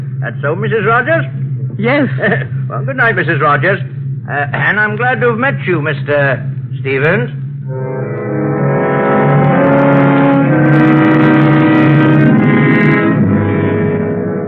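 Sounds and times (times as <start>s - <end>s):
car engine droning while driving along: 0.0s - 14.4s
speech: 0.2s - 7.9s.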